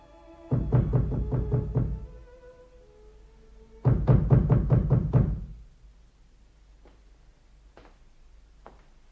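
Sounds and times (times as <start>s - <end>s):
knocking on the wooden door of a house: 0.5s - 2.2s, 3.8s - 5.6s.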